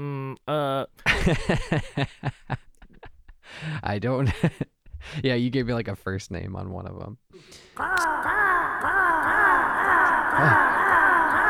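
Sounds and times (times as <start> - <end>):
speech: 0.0 - 2.6, 3.8 - 9.0, 10.4 - 10.8
person imitating cawing crows: 7.8 - 11.4.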